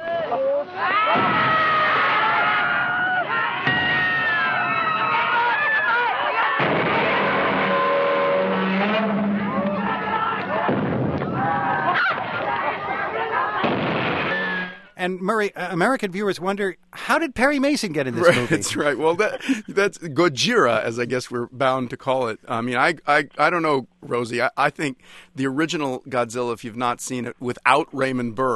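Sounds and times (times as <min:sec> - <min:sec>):
people screaming in panic in a monster movie: 0:00.0 - 0:14.9
crashing blasts: 0:06.6 - 0:11.4, 0:13.6 - 0:14.8
laughter: 0:11.4 - 0:13.7, 0:18.1 - 0:20.0
speech: 0:15.0 - 0:28.5.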